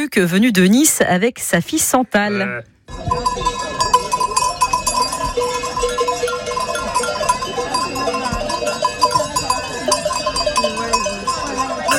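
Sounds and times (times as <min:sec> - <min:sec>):
speech: 0:00.0 - 0:03.6
flock of sheep bleating: 0:02.2 - 0:02.7
busy crowd murmur: 0:02.3 - 0:11.9
cowbells and sheep bells clanking on a flock of sheep during transhumance: 0:02.9 - 0:11.9.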